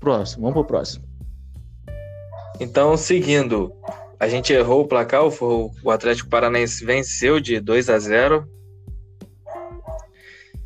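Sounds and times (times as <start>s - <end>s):
speech: 0.0s - 1.1s, 2.6s - 8.6s
dog barking and yelping: 0.4s - 0.9s, 2.3s - 2.7s, 3.8s - 4.7s, 9.5s - 10.1s.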